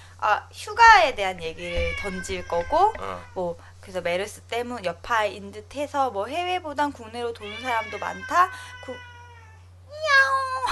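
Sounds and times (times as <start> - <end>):
steady low hum: 0.0 - 10.7
speech: 0.2 - 9.1
cat meowing: 1.5 - 3.4, 7.4 - 10.4.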